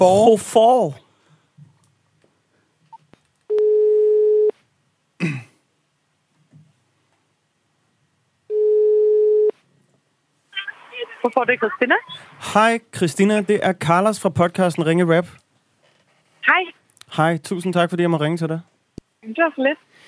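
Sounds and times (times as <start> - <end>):
speech: 0.0 - 1.0, 5.2 - 5.5, 11.2 - 15.4, 16.4 - 19.9
telephone ringback tone while placing a call: 3.5 - 4.5, 8.5 - 9.5
person clearing throat: 5.2 - 5.7.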